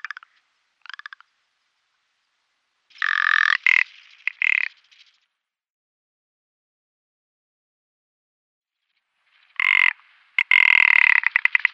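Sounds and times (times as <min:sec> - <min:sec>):
male ptarmigan display clicks and rattling croak: 0:00.0 - 0:01.3, 0:02.9 - 0:05.1, 0:09.6 - 0:11.7.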